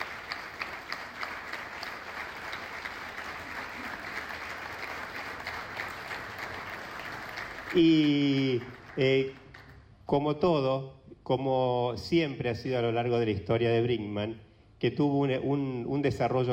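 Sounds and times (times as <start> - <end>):
audience applause at a cultural event: 0.0 - 9.8
speech: 7.7 - 9.4, 10.1 - 16.5.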